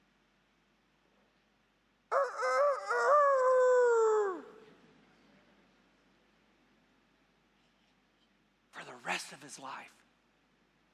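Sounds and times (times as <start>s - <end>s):
rooster crowing: 2.1s - 4.6s
speech: 9.3s - 10.1s.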